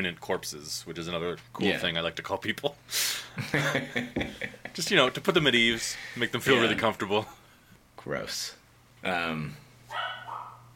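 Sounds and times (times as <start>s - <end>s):
speech: 0.0s - 7.4s, 8.0s - 10.0s
laughter: 3.4s - 4.8s
pet dog barking in the house: 9.9s - 10.7s.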